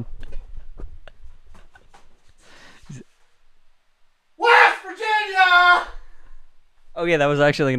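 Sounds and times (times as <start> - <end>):
person running across a room: 0.0 - 2.4
speech: 2.9 - 3.1, 7.0 - 7.7
person screaming loudly: 4.4 - 6.0.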